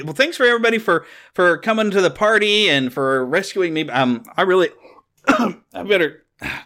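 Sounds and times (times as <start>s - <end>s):
speech: 0.0s - 6.6s
harsh gravelly throat clearing and coughing: 5.2s - 5.7s, 6.4s - 6.6s.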